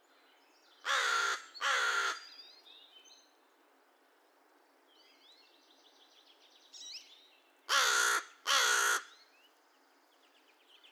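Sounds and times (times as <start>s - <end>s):
American crow cawing: 0.9s - 2.2s, 7.7s - 9.1s.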